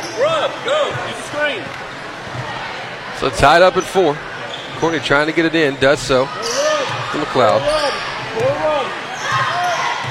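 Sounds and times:
crowd noise: 0.0s - 10.0s
speech: 0.2s - 1.9s, 3.2s - 8.7s
shoe squeaks: 3.4s - 5.1s, 6.3s - 8.2s
basketball dribbled on a court during a game: 6.8s - 8.6s, 9.2s - 10.0s.

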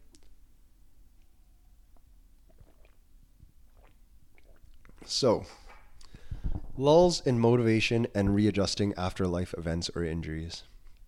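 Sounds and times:
person sipping coffee with wet slurps: 1.9s - 5.1s
person swallowing coffee: 2.4s - 5.1s
speech: 5.1s - 5.6s, 6.8s - 10.7s.

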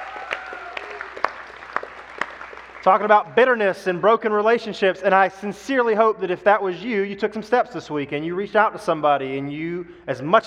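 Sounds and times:
audience applause: 0.0s - 3.1s
speech: 2.8s - 10.4s.

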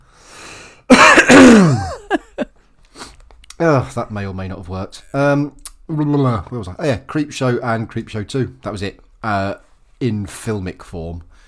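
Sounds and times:
short sharp coughs: 0.9s - 2.0s
rasping throat clearing from a tickly cough: 1.0s - 2.0s
speech: 3.6s - 11.4s.

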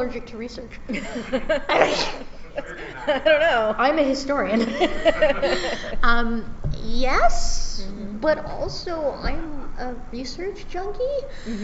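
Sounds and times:
speech: 0.0s - 11.6s
laughter: 0.9s - 6.0s
single sneeze with voiced gasps and breathy burst: 1.7s - 2.3s.

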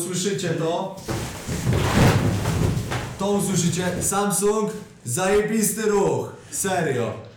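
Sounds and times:
speech: 0.0s - 7.3s
cardboard box being folded and pressed into a chair: 1.0s - 4.1s
soft thumps of cardboard: 1.0s - 4.3s
crinkling rustles of cardboard: 1.0s - 4.8s.

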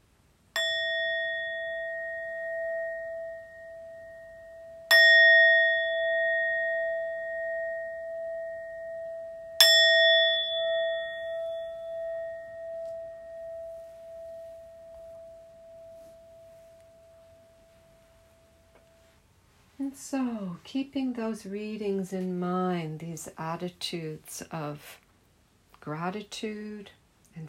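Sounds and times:
meditation bell strikes: 0.6s - 19.1s
speech: 20.0s - 25.0s, 25.8s - 27.4s.

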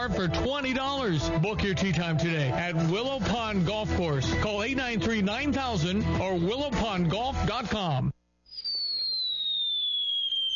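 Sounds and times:
speech: 0.0s - 8.2s
firework rocket whistling: 8.5s - 10.5s.

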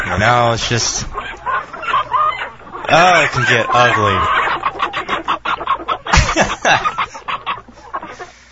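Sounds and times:
chickens squawking and clucking: 0.0s - 8.4s
speech: 0.1s - 1.2s, 2.9s - 4.4s, 6.4s - 6.9s
laughter: 6.0s - 8.3s.

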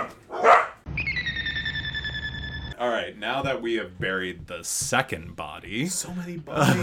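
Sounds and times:
dog barking: 0.0s - 0.8s
steady high-pitched tone: 0.9s - 2.8s
speech: 3.0s - 6.8s.

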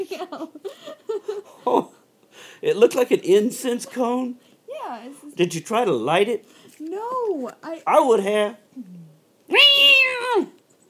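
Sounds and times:
speech: 0.0s - 1.9s, 2.6s - 10.5s
female cat giving a drawn-out meow: 9.5s - 10.6s.

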